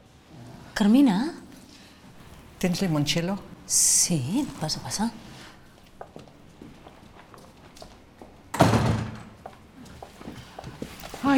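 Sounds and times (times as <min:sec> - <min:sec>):
speech: 0:00.8 - 0:01.4, 0:02.6 - 0:05.3
faint footsteps: 0:04.6 - 0:08.5, 0:09.2 - 0:11.3
front door of a house opening: 0:08.5 - 0:09.5.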